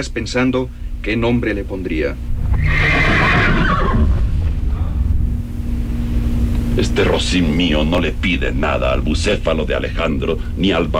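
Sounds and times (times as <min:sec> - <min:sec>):
speech: 0:00.0 - 0:03.0, 0:06.8 - 0:10.9
low steady rumble: 0:00.0 - 0:10.9
horse whinnying: 0:02.4 - 0:04.6.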